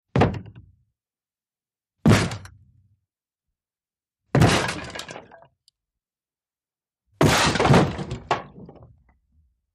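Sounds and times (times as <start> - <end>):
wooden door being bashed down: 4.3 - 5.3, 7.2 - 8.9.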